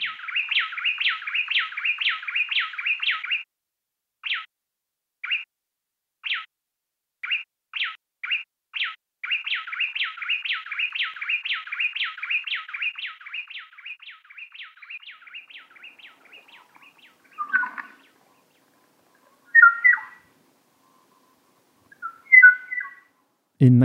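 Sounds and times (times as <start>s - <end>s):
bay wren chirpy calls: 0.0s - 3.4s, 7.2s - 23.2s
female and male bay wren singing an antiphonal duet: 0.0s - 3.5s, 4.2s - 4.5s, 5.2s - 5.5s, 6.2s - 6.5s, 7.2s - 23.2s.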